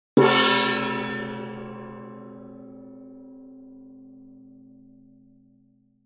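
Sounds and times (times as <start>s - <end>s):
medium sized gong hit: 0.2s - 2.9s.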